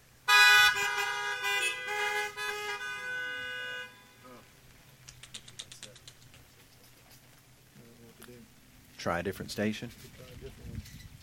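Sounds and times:
car horns honking: 0.2s - 4.4s
speech: 9.0s - 10.2s.

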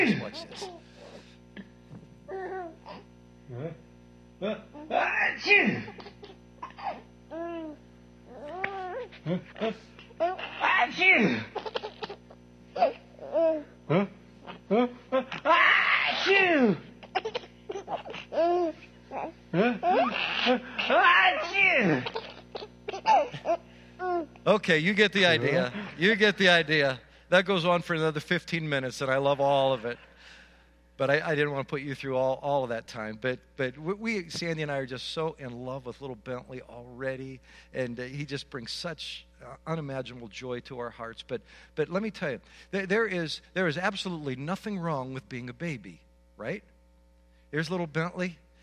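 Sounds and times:
speech: 0.0s - 0.8s, 3.5s - 6.1s, 9.1s - 11.8s, 12.8s - 22.2s, 23.1s - 30.1s, 31.0s - 46.7s, 47.5s - 48.4s
five-month-old baby giggling and babbling: 0.3s - 0.8s, 2.3s - 3.1s, 5.7s - 13.7s, 17.0s - 24.4s
father making loud exaggerated fake sneezes to his baby: 4.9s - 7.0s, 9.2s - 11.6s, 13.9s - 16.9s, 19.5s - 22.4s.

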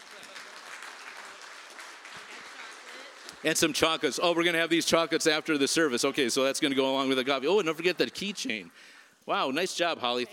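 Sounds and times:
audience applauding at a service: 0.0s - 4.8s, 7.0s - 8.8s
speech: 3.4s - 10.3s.

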